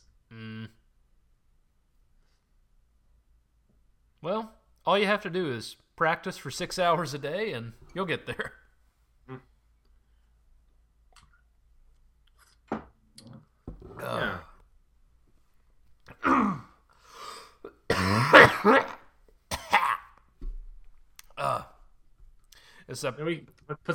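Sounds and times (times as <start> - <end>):
speech: 4.2 - 8.6, 9.3 - 9.5, 14.0 - 14.4, 22.9 - 23.9
person coughing: 16.1 - 16.8, 17.6 - 20.2
throat clearing: 16.1 - 16.8, 17.6 - 20.2.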